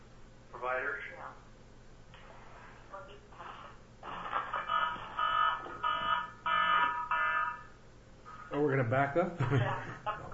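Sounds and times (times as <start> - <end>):
mobile phone ringing with a bright electronic ringtone: 4.4 - 7.7
speech: 8.7 - 10.1.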